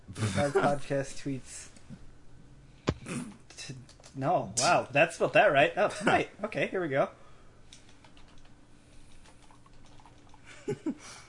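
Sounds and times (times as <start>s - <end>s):
speech: 0.2s - 1.7s, 3.0s - 7.2s, 10.7s - 11.2s
typing on a computer keyboard: 7.8s - 8.5s, 9.2s - 10.4s.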